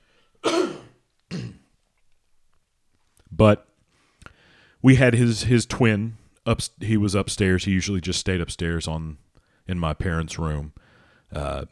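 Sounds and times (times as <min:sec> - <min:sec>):
throat clearing: 0:00.4 - 0:01.7
speech: 0:03.4 - 0:03.7, 0:04.8 - 0:11.6.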